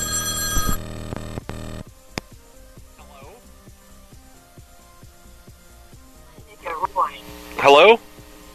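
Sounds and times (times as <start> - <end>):
payphone bell ringing: 0.0 - 0.8
speech: 7.6 - 8.1.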